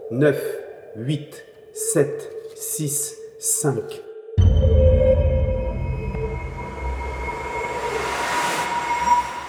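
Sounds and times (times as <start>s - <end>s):
speech: 0.1s - 4.1s
spaceship touching down with heavy rumble: 4.4s - 8.7s.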